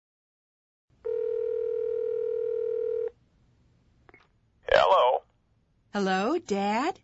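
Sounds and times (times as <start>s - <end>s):
telephone dial tone before a call: 1.1s - 3.1s
speech: 6.0s - 7.0s.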